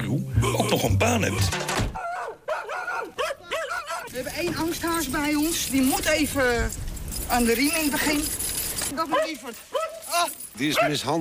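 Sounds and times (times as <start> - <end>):
speech: 0.0 - 1.8, 4.2 - 11.1
dog barking: 2.0 - 4.1, 9.0 - 10.1, 10.7 - 11.1.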